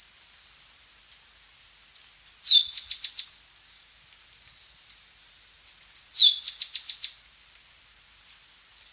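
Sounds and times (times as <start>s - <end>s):
Tepui brush finch song: 2.2s - 3.4s, 5.7s - 7.2s.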